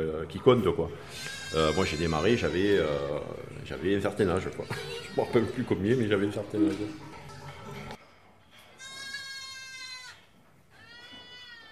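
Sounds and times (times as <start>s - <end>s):
speech: 0.2s - 7.2s
goats bleating: 1.0s - 6.0s, 8.8s - 11.7s.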